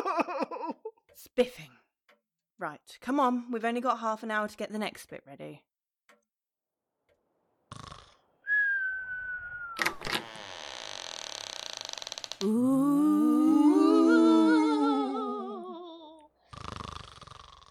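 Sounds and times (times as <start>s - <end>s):
speech: 1.3s - 1.8s, 2.6s - 5.7s, 12.4s - 12.8s
loud creaking: 8.0s - 12.6s
person whistling: 8.5s - 9.8s
wavering groaning tone: 12.4s - 16.2s.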